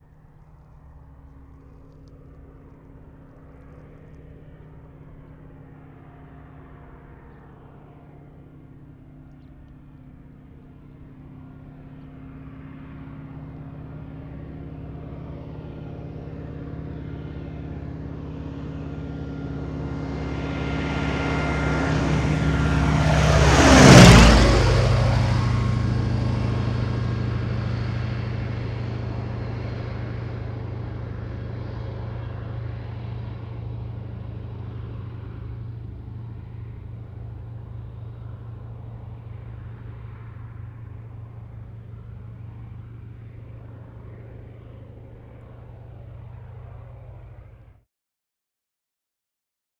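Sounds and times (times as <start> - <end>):
prop plane flying low and fast by: 0.0 - 47.8.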